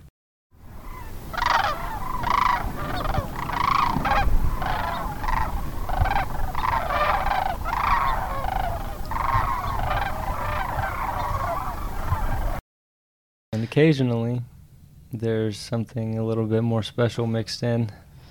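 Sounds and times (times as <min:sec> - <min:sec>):
large flock of several thousand cranes trumpeting: 0:00.7 - 0:12.6
speech: 0:13.8 - 0:14.5, 0:15.1 - 0:18.0.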